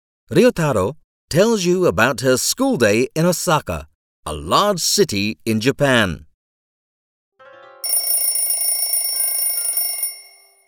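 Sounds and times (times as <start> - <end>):
speech: 0.3 - 6.3
alarm clock ringing with a metallic bell: 7.8 - 10.6.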